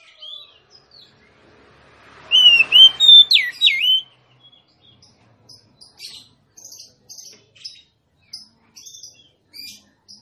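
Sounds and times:
female Oriental magpie-robin whistled song: 2.3 - 4.8, 5.8 - 10.2.

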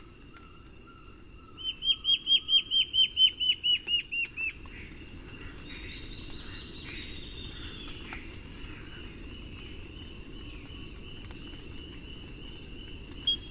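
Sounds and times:
Black-faced antbird Myrmoborus myotherinus ochrolaemus calling: 1.5 - 4.5, 13.2 - 13.5.

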